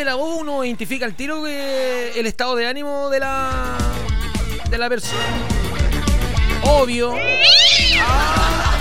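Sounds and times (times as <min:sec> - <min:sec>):
speech: 0:00.0 - 0:04.1, 0:04.7 - 0:05.7, 0:06.6 - 0:08.7
cat meowing: 0:07.1 - 0:08.5.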